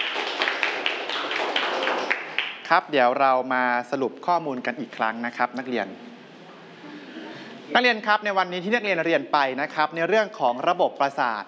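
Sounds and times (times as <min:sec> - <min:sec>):
students clapping for a classmate in a classroom: 0:00.0 - 0:02.8
speech: 0:02.7 - 0:06.2, 0:07.7 - 0:11.4.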